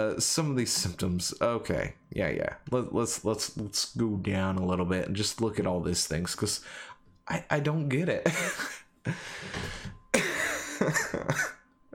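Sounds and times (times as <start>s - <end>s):
speech: 0.0s - 9.9s, 10.8s - 11.6s
laughter: 8.3s - 8.8s, 10.2s - 11.5s
person coughing from laughing too much: 9.5s - 11.6s.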